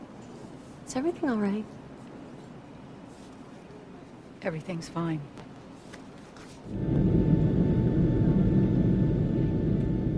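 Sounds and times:
speech: 0.9s - 1.8s, 4.4s - 5.4s, 6.7s - 6.9s
airplane cabin rumble during flight: 6.6s - 10.1s.

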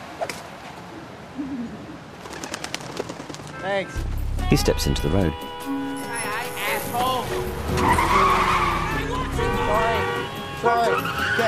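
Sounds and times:
speech: 0.2s - 0.4s, 3.6s - 5.8s, 6.9s - 8.6s, 9.4s - 11.4s
pigeon cooing outside an apartment block: 1.3s - 3.1s.

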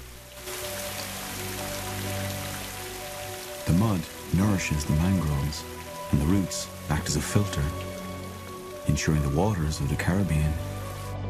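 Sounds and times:
heavy rain on water among mangrove roots in the Caribbean: 0.0s - 11.2s
speech: 4.0s - 7.9s, 8.8s - 10.7s.

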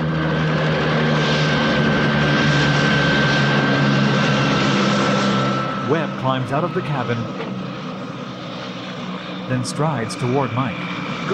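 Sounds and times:
helicopter engine and rotors landing: 0.0s - 11.3s
speech: 6.3s - 7.5s, 9.5s - 11.3s.

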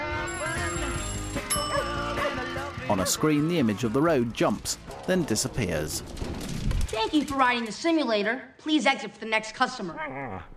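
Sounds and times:
alarm clock ringing with a bright metallic jangle: 0.0s - 2.8s
speech: 2.9s - 6.3s, 6.9s - 10.5s.

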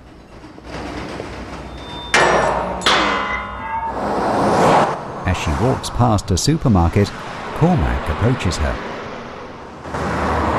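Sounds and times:
trains trundling along tracks under a railway bridge: 0.0s - 10.5s
sharp metallic clanks of trains: 0.3s - 4.4s
speech: 5.4s - 8.9s.

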